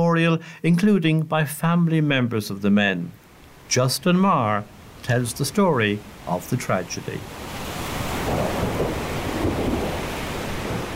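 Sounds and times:
wind: 0.0s - 10.9s
speech: 0.2s - 7.6s
heavy rain: 4.5s - 10.9s.

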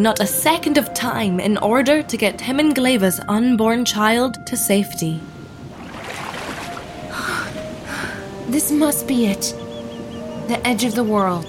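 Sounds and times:
speech: 0.0s - 5.4s, 8.5s - 9.6s, 10.5s - 11.4s
boat pushing through choppy water: 5.6s - 8.5s.

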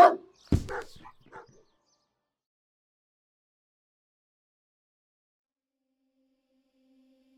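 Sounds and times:
dog barking: 0.0s - 1.6s.

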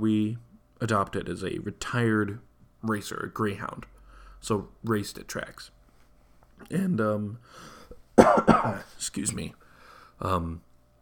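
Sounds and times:
speech: 0.0s - 5.8s, 6.6s - 9.6s, 10.2s - 10.7s
harsh coughing from a speaker whose voice has gone dry: 7.8s - 9.0s
voiced throat clearing from a speaker whose voice has gone dry: 8.2s - 8.9s.

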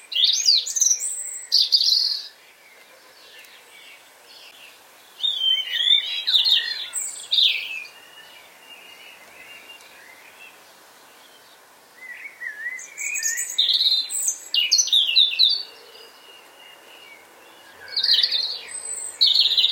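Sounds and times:
European robin singing its autumn song: 0.0s - 19.7s
faint hiss: 0.0s - 19.7s.

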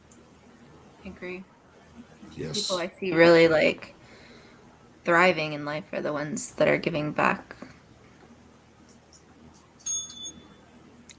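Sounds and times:
speech: 1.0s - 4.0s, 5.0s - 7.6s
small bell ding: 9.8s - 10.6s.

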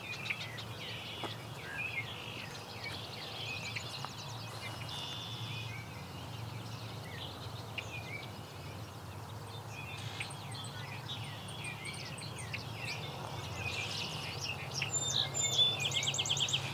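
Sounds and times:
song sparrow singing outdoors: 0.0s - 16.7s
steady low rumble of wind or traffic: 0.0s - 16.7s.

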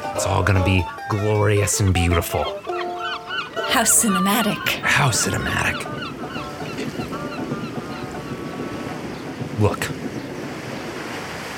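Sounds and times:
speech: 0.2s - 2.7s, 3.7s - 6.0s, 9.6s - 10.0s
rough sea waves crashing: 3.7s - 11.5s
wind noise: 4.5s - 11.5s.

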